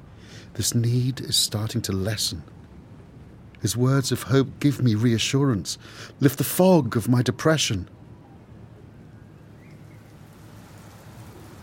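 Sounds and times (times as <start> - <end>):
speech: 0.5 - 2.6, 3.6 - 8.0
heavy rain pouring down: 9.8 - 11.6.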